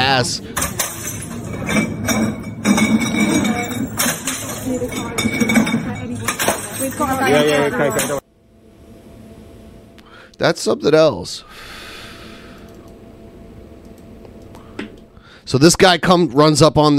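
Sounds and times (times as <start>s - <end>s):
speech: 0.1s - 0.7s, 7.0s - 8.2s, 10.4s - 11.7s, 15.5s - 16.9s
glass bottles thrown clinking and smashing: 0.6s - 8.2s.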